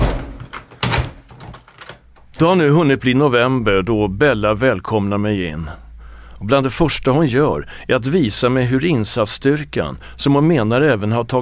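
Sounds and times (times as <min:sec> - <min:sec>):
damaged front door being forced open: 0:00.0 - 0:02.6
speech: 0:02.4 - 0:05.8, 0:06.4 - 0:11.3.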